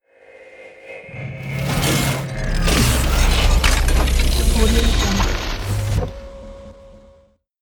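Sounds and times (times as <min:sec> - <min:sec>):
robotic transformation sound: 0:01.1 - 0:06.8.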